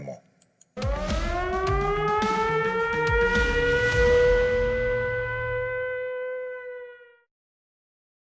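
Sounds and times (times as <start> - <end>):
recorded air-raid siren wailing: 0.8 - 7.3.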